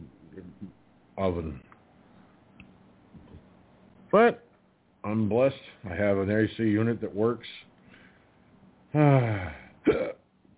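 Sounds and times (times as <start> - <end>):
speech: 1.2 - 1.7, 4.1 - 4.4, 5.0 - 7.6, 8.9 - 10.2
person hiccuping: 9.0 - 10.3.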